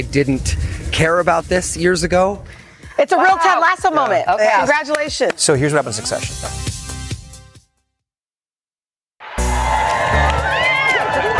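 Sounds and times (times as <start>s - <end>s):
speech: 0.0s - 6.7s
outdoor crowd cheering and shouting: 3.0s - 4.9s, 9.2s - 11.3s.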